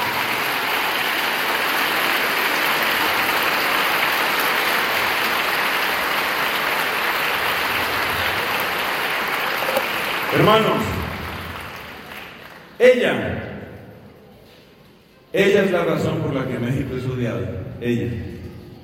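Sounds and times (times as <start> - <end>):
audience applause at a religious talk: 0.0 - 12.8
speech: 10.4 - 10.9, 12.8 - 13.3, 15.4 - 18.3.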